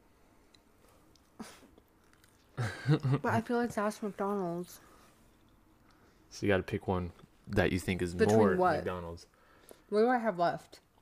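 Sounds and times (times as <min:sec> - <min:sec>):
person chewing food: 0:00.5 - 0:02.6
speech: 0:02.9 - 0:04.9, 0:06.4 - 0:10.8.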